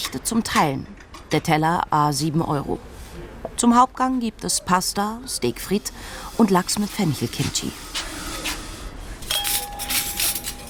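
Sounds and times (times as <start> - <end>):
speech: 0.1 - 8.1
gold-rimmed crockery glassware and cutlery clinking as restaurant tables are set: 9.2 - 10.6.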